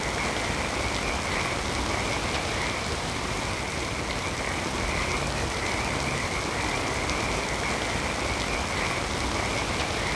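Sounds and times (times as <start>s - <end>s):
wet jungle ambience: 0.0s - 10.1s.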